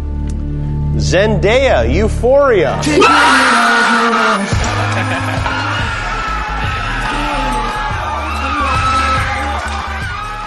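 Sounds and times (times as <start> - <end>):
speech: 1.0 - 5.5
man whooping and shouting excitedly: 2.8 - 4.5
laughter: 4.0 - 8.4
loud thumping rhythmic backdrop: 4.4 - 10.4.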